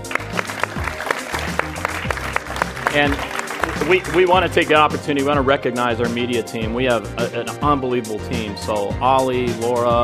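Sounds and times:
audience applause: 0:00.0 - 0:04.5
speech: 0:02.9 - 0:10.0.

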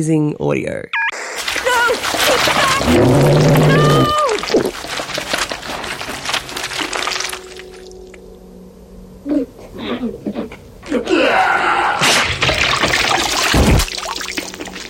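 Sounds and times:
speech: 0:00.0 - 0:01.0, 0:01.9 - 0:05.0, 0:09.3 - 0:11.4
gooey squelching and gurgling of blob swallowing someone: 0:01.4 - 0:08.2, 0:12.4 - 0:14.8
person crying out and gasping: 0:01.7 - 0:04.5.

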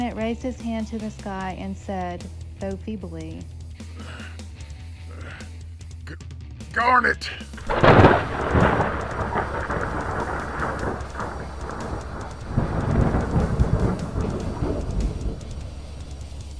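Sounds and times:
speech: 0:00.1 - 0:04.1, 0:06.8 - 0:07.8
rain hissing: 0:07.4 - 0:16.5
heavy rolling thunder: 0:07.6 - 0:16.5
lightning striking a ring: 0:07.6 - 0:16.5.

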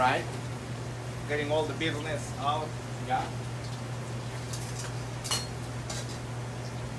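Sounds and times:
speech: 0:00.0 - 0:00.4, 0:01.3 - 0:03.4
okra frying in a pan: 0:00.0 - 0:06.9.

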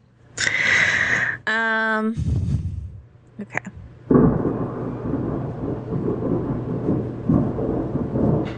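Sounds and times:
speech: 0:01.5 - 0:02.6, 0:03.4 - 0:03.7
thunder rumbling: 0:03.8 - 0:08.5
faint rain patter: 0:04.0 - 0:08.5.

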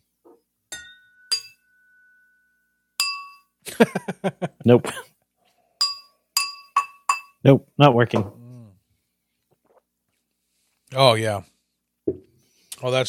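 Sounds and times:
glasses clinking in a toast: 0:00.7 - 0:03.6, 0:05.8 - 0:07.4
laughter: 0:03.7 - 0:05.1
speech: 0:03.8 - 0:05.0, 0:07.4 - 0:08.4, 0:10.9 - 0:11.5, 0:12.8 - 0:13.0.

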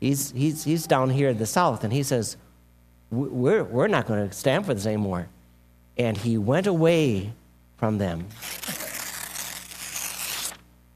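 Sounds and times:
speech: 0:00.0 - 0:02.5, 0:03.1 - 0:05.4, 0:06.0 - 0:08.8
sheet of paper being ripped in two: 0:08.3 - 0:10.7.

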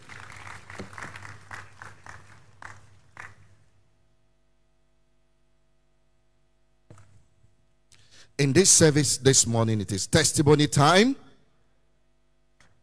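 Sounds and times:
audience applauding: 0:00.0 - 0:03.6
speech: 0:08.4 - 0:11.2.

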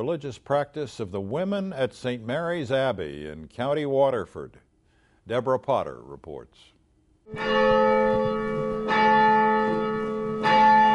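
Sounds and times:
speech: 0:00.0 - 0:04.6, 0:05.3 - 0:06.7, 0:07.3 - 0:08.3
large abbey church bells ringing call to worship: 0:07.3 - 0:10.9.

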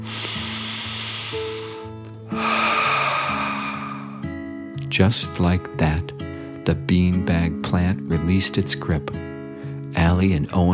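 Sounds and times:
deep breath in and out: 0:00.0 - 0:04.6
soft music with stepping low tones: 0:00.0 - 0:10.7
speech: 0:05.0 - 0:09.3, 0:10.0 - 0:10.7.

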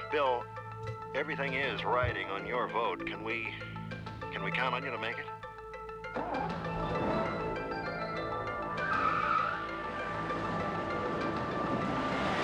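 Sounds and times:
speech: 0:00.1 - 0:03.8, 0:04.4 - 0:05.4, 0:06.2 - 0:06.7
Mercedes-Benz car tires squealing while skidding: 0:06.2 - 0:12.4
Mercedes-Benz car engine and road noise while speeding: 0:08.1 - 0:12.4.

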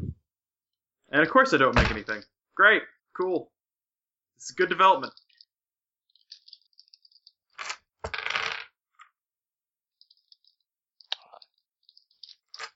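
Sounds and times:
speech: 0:01.1 - 0:03.5, 0:04.4 - 0:05.2
dice rolling on a hard table: 0:07.6 - 0:09.1.

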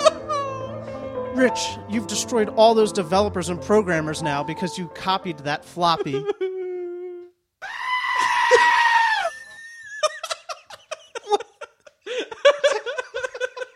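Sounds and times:
speech: 0:01.4 - 0:06.4
laughter: 0:06.0 - 0:06.6, 0:09.3 - 0:13.7
goat screaming: 0:07.6 - 0:09.6.

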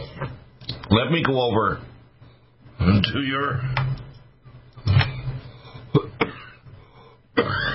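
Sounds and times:
speech: 0:00.9 - 0:01.9, 0:02.8 - 0:03.8
person coughing: 0:05.9 - 0:06.6, 0:07.4 - 0:07.7.

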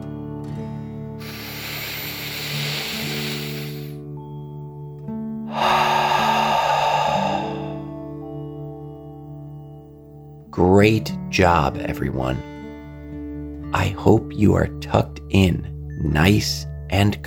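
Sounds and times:
soft sustained music: 0:00.0 - 0:17.2
slow deep breath in and out during a children's relaxation exercise: 0:01.2 - 0:04.0, 0:05.5 - 0:08.0
speech: 0:10.6 - 0:12.5, 0:13.7 - 0:17.2.

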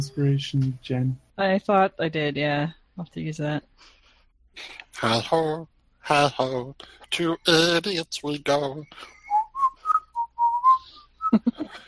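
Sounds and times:
speech: 0:00.0 - 0:04.0, 0:04.6 - 0:09.2, 0:11.3 - 0:11.8
person whistling a short bouncy melody: 0:08.9 - 0:11.4.

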